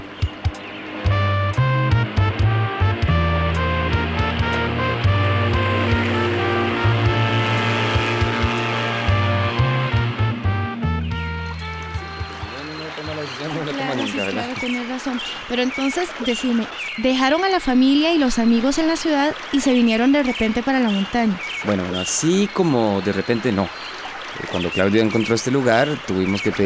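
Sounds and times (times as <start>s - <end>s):
waves splashing: 0.0s - 10.9s, 11.6s - 26.6s
motorboat engine roaring while speeding across water: 0.0s - 16.4s
speech: 15.0s - 26.6s.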